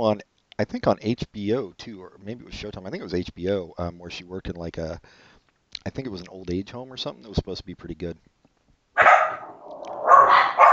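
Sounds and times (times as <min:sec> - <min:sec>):
speech: 0:00.0 - 0:08.4
dogs barking sharply and harshly: 0:09.0 - 0:10.7.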